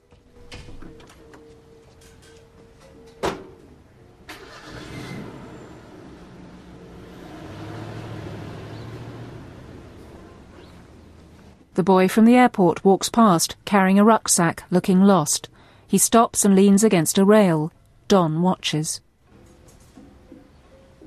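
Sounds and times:
truck engine starting and running as someone drives off: 4.4s - 11.6s
speech: 11.8s - 19.0s.

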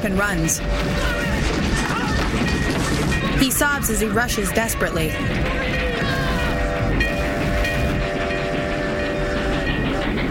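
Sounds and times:
speech: 0.0s - 1.2s, 3.4s - 5.8s
train crossing a railway bridge with heavy rumble and clatter: 0.0s - 10.2s
long blaring train horn: 3.4s - 10.2s.

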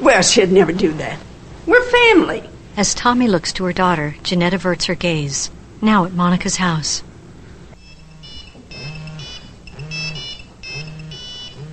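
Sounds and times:
speech: 0.1s - 1.3s, 2.0s - 7.1s
cell phone ringing with high warbling electronic tones at a house: 7.8s - 11.7s.

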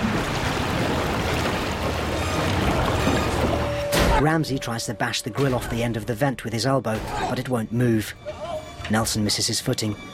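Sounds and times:
water flooding into a vent: 0.0s - 5.8s
speech: 4.2s - 10.1s.

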